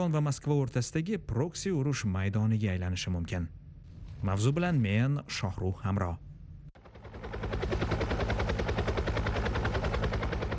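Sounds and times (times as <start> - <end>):
speech: 0.0 - 3.6, 4.2 - 6.3
Russian-made Rostvertol helicopters rotor chop: 6.8 - 10.5.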